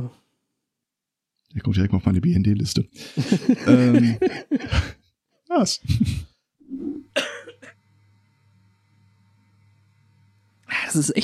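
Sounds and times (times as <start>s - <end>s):
speech: 1.5s - 5.0s, 5.6s - 7.4s, 10.9s - 11.2s
laughter: 3.0s - 5.0s, 5.8s - 6.3s
coughing fit brought on by laughter: 6.9s - 7.8s.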